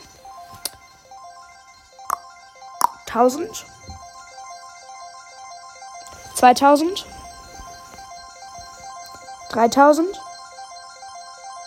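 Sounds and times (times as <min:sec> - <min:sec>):
bright electronic mobile game season reward chimes: 0:00.0 - 0:11.6
speech: 0:03.1 - 0:03.8, 0:06.4 - 0:07.2, 0:09.6 - 0:10.2.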